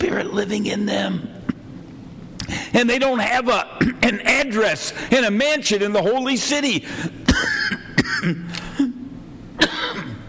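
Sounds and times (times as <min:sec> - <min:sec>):
speech: 0:00.0 - 0:01.4, 0:02.5 - 0:08.6
person coughing: 0:03.8 - 0:04.1, 0:07.2 - 0:10.2
rasping throat clearing: 0:07.3 - 0:10.2.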